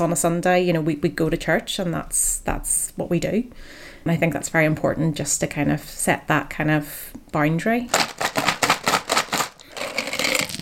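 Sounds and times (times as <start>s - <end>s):
speech: 0.0s - 8.5s
coloured dice and animal dice rattling in a children's board game: 7.9s - 10.5s.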